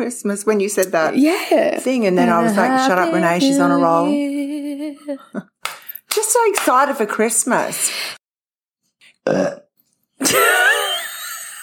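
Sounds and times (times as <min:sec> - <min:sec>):
speech: 0:00.0 - 0:05.5, 0:06.2 - 0:08.2, 0:09.3 - 0:09.6, 0:10.2 - 0:10.6
loud drawn-out burp: 0:09.1 - 0:10.9.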